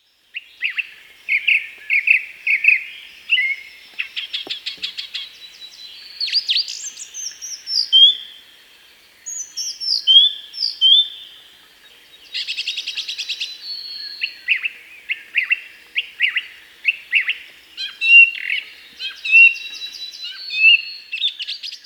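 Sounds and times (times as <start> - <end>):
song thrush singing in bright varied phrases: 0.0 - 21.8.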